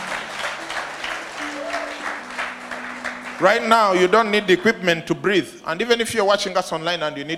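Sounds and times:
audience clapping hands in a rhythmic beat: 0.0s - 4.9s
speech: 3.4s - 7.3s.

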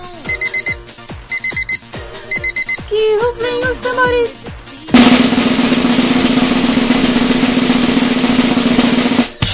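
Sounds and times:
cheap electronic alarm clock beeping: 0.3s - 2.9s
speech: 3.9s - 4.4s
low thumping tones: 5.0s - 9.4s.

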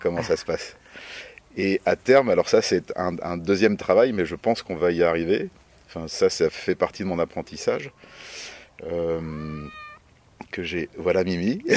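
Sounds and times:
speech: 0.0s - 9.8s, 10.5s - 11.7s
person hesitating: 9.2s - 9.9s
house cat meowing: 9.2s - 10.0s.

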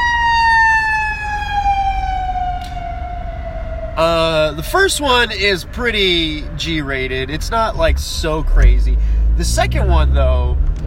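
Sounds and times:
emergency vehicle siren wailing outside: 0.0s - 6.5s
low traffic rumble: 0.0s - 10.8s
speech: 4.0s - 10.6s.

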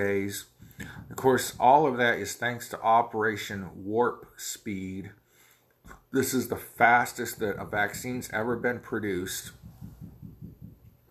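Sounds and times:
speech: 0.0s - 0.5s, 1.1s - 5.2s, 6.1s - 9.6s
dog leg thumping the floor in soft low thuds: 9.5s - 11.0s.

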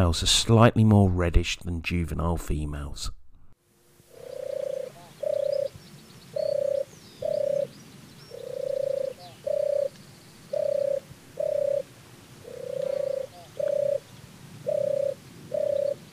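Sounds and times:
speech: 0.0s - 3.2s
faint birdsong: 4.0s - 16.1s
turtle dove purring tur-tur mating song: 4.0s - 16.1s.

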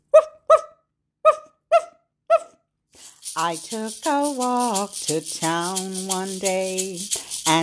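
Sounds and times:
dog barking: 0.1s - 2.6s
speech: 3.4s - 7.6s.

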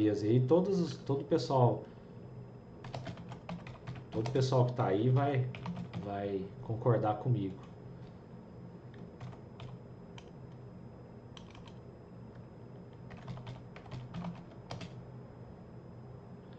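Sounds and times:
speech: 0.0s - 2.0s, 4.2s - 7.7s
low hum: 0.0s - 16.5s
typing on a computer keyboard: 2.8s - 4.8s, 5.5s - 6.1s, 9.2s - 10.3s, 11.4s - 11.8s, 13.0s - 15.0s.

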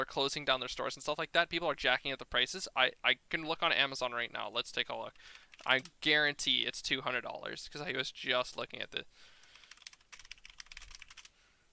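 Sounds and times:
speech: 0.0s - 9.3s
typing on a computer keyboard: 5.3s - 5.9s, 9.4s - 11.3s.

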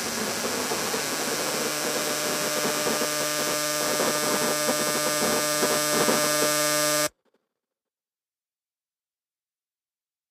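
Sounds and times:
processed buzzing drone of endangered bees: 0.0s - 7.1s.

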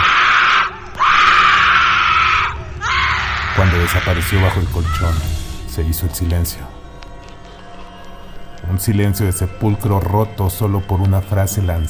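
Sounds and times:
woman screaming desperately: 0.0s - 3.6s
low rumble: 0.7s - 10.0s
speech: 3.8s - 6.8s, 8.7s - 11.8s.

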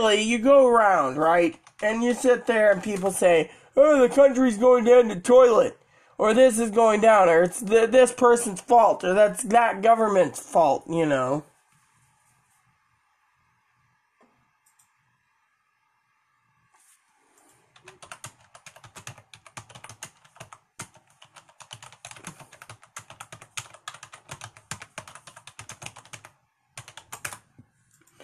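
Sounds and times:
speech: 0.0s - 11.5s
fast typing on a computer keyboard: 1.4s - 3.3s, 17.8s - 28.2s.

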